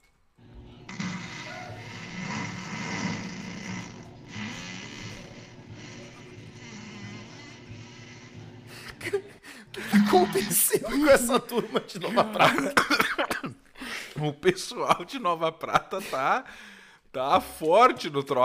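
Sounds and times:
long raspy fluttering fart: 0.9s - 8.3s
laughter: 8.7s - 13.5s, 14.2s - 16.4s
speech: 9.0s - 13.3s, 14.2s - 18.4s.

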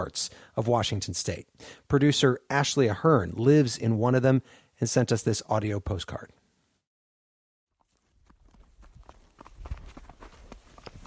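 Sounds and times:
speech: 0.0s - 6.4s
horse hoofbeats ridden through sagebrush in a Washington State valley: 7.8s - 11.0s.

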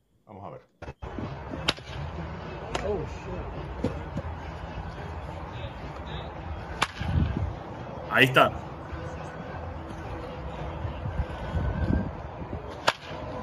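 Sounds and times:
murmur: 1.0s - 13.4s
speech: 2.9s - 4.3s, 8.2s - 8.6s
baseball bat cracking against ball: 6.7s - 7.1s, 12.7s - 13.2s.

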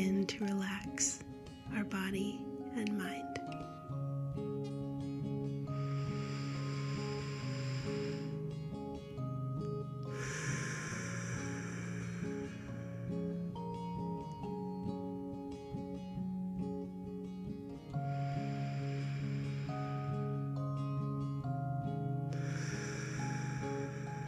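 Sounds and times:
speech: 0.0s - 3.7s
soft steady tonal music: 0.0s - 24.2s
slow deep breaths taken to relax body and mind: 5.6s - 14.7s, 17.8s - 24.2s.

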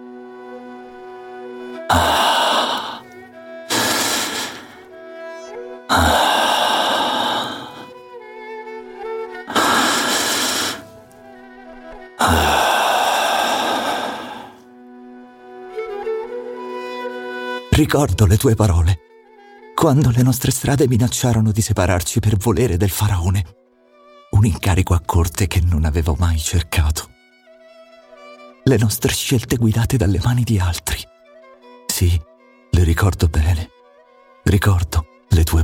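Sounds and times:
soft sustained musical background: 0.0s - 35.6s
slow heavy loud breaths taken to calm down: 1.7s - 4.9s, 5.9s - 7.9s, 9.5s - 11.0s, 12.2s - 14.6s
speech: 17.8s - 19.1s, 19.8s - 23.6s, 24.4s - 27.1s, 28.7s - 31.1s, 32.0s - 32.3s, 32.9s - 33.7s, 34.5s - 35.6s.

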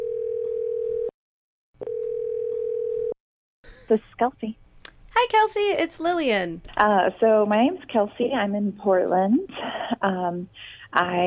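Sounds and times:
steady electronic phone line tone: 0.0s - 1.1s, 1.8s - 3.2s
speech: 3.9s - 4.6s, 5.2s - 11.2s.

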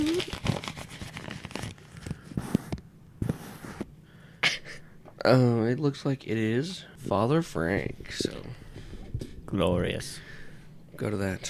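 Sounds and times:
paper crinkling as it is handled and unfolded: 0.0s - 2.4s
speech: 5.2s - 8.6s, 9.5s - 10.3s, 11.0s - 11.4s.

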